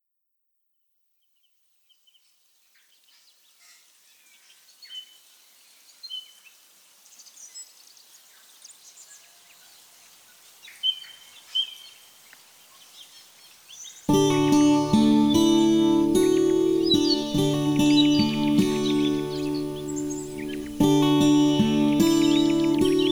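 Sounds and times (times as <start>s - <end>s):
ambient music: 14.1s - 23.0s.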